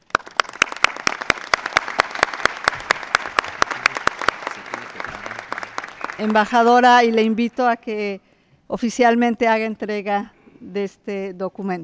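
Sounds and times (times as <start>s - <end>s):
audience applauding: 0.0s - 6.7s
sharp rhythmic claps: 0.0s - 6.8s
speech: 6.2s - 11.8s.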